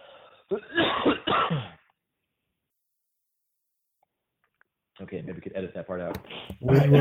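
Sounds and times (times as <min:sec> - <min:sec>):
speech: 0:00.5 - 0:01.7, 0:05.0 - 0:06.9
harsh rough coughs with a throaty rasp: 0:00.5 - 0:01.9.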